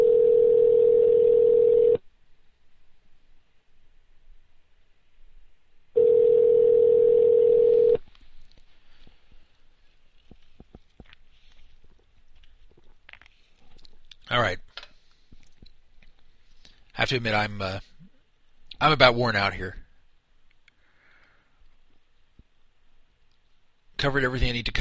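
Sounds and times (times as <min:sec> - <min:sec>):
telephone ringback tone of an unanswered call: 0:00.0 - 0:02.0, 0:06.0 - 0:08.0
speech: 0:17.1 - 0:17.9, 0:18.8 - 0:19.8, 0:24.0 - 0:24.7.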